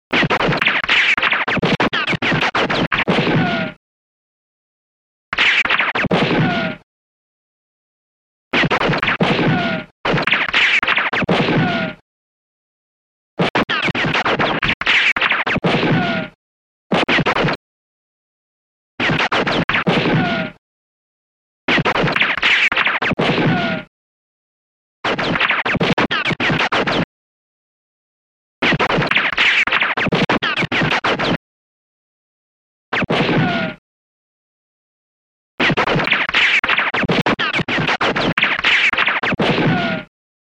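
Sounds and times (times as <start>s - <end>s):
rapid fire ricochets: 0.1s - 3.8s, 5.4s - 6.8s, 8.6s - 12.0s, 13.4s - 17.6s, 19.0s - 20.6s, 21.7s - 23.9s, 25.0s - 27.1s, 28.6s - 31.4s, 32.9s - 33.8s, 35.6s - 40.1s.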